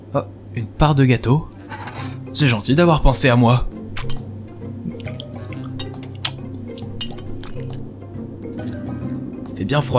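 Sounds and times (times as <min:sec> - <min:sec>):
speech: 0:00.1 - 0:01.5, 0:02.4 - 0:03.7, 0:09.7 - 0:09.9
dishes clinking and tapping together: 0:01.6 - 0:02.4, 0:03.9 - 0:07.9
faint trickling of water: 0:04.0 - 0:07.9.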